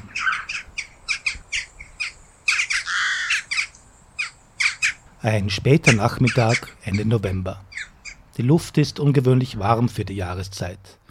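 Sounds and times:
several jackdaws calling: 0:00.0 - 0:08.4
speech: 0:05.2 - 0:07.7, 0:08.4 - 0:11.0.

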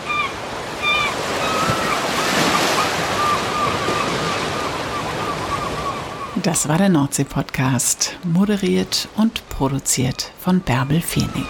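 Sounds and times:
faint high calls: 0:00.0 - 0:06.4
North Sea surf breaking along the shore: 0:00.0 - 0:11.4
speech: 0:06.4 - 0:11.4.

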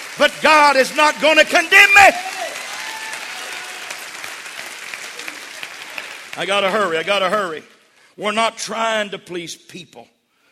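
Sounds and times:
large crowd applause: 0:00.0 - 0:07.6
speech: 0:00.2 - 0:02.4, 0:06.4 - 0:10.2.

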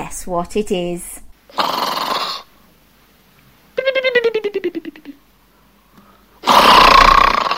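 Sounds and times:
speech: 0:00.2 - 0:01.8
person snoring: 0:01.5 - 0:02.5, 0:06.4 - 0:07.5.

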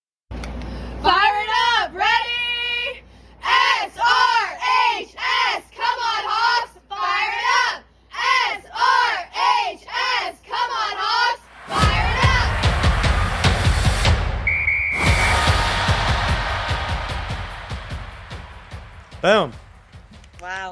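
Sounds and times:
cheerleading team shouting a cheer chant in unison: 0:01.0 - 0:14.1, 0:15.0 - 0:19.5
loud clapping and cheering: 0:11.5 - 0:14.2, 0:15.0 - 0:20.7.

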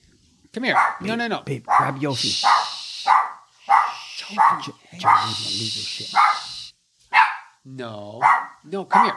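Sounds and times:
speech: 0:00.5 - 0:02.8, 0:04.3 - 0:06.4, 0:07.7 - 0:09.1
dog barking sharply: 0:00.7 - 0:01.1, 0:01.7 - 0:07.6, 0:08.2 - 0:09.1.

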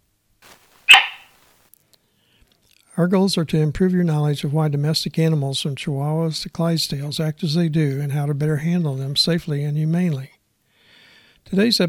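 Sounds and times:
faint rustle: 0:00.4 - 0:02.0
cattle dog barking sharply: 0:00.9 - 0:01.3
speech: 0:03.0 - 0:10.4, 0:11.4 - 0:11.8.

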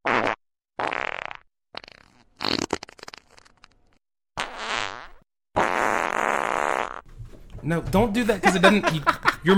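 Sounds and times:
wet squelchy armpit farts made by hand: 0:00.0 - 0:03.8, 0:04.4 - 0:07.1
speech: 0:07.6 - 0:09.5
laughter: 0:08.2 - 0:09.5.

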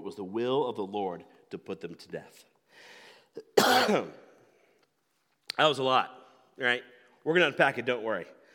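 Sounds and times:
speech: 0:00.1 - 0:04.2, 0:05.6 - 0:08.4
quiet breath: 0:02.6 - 0:03.4, 0:04.4 - 0:04.9, 0:08.4 - 0:08.5
harsh cough: 0:03.4 - 0:04.3.

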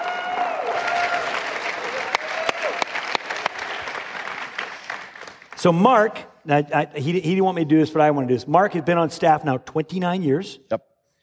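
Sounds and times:
faint cheers: 0:00.0 - 0:02.9
large indoor church audience applauding: 0:00.0 - 0:05.8
speech: 0:05.6 - 0:10.9.

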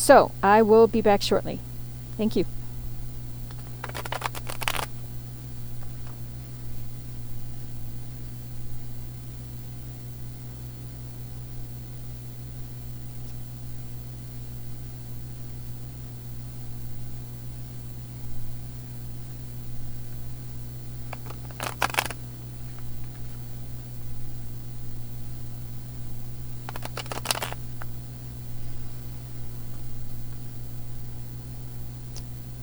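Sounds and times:
speech: 0:00.0 - 0:02.6
steady low electrical hum: 0:00.0 - 0:32.6
deck of tarot cards being shuffled: 0:03.5 - 0:05.0, 0:21.1 - 0:22.9, 0:26.7 - 0:27.9.

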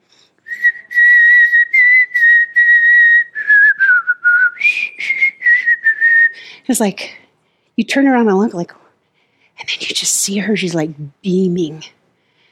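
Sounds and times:
woman whistling a melody while worshipping: 0:00.4 - 0:06.4
speech: 0:06.7 - 0:07.2, 0:07.8 - 0:08.8, 0:10.0 - 0:12.0.

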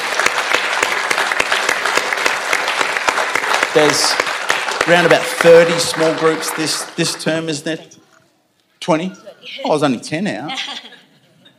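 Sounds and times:
large church audience applauding: 0:00.0 - 0:07.6
speech: 0:03.7 - 0:08.0, 0:08.8 - 0:10.8.

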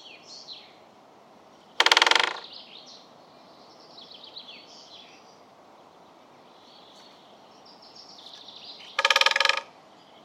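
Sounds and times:
faint birdsong: 0:00.0 - 0:10.2
woodpecker drumming on wood: 0:01.8 - 0:02.5, 0:08.9 - 0:09.7.

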